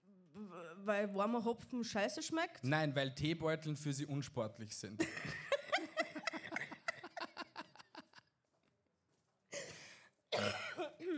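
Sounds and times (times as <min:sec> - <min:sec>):
speech: 0:00.5 - 0:05.5
laughter: 0:05.0 - 0:08.3
hacking coughing fit: 0:09.6 - 0:11.1.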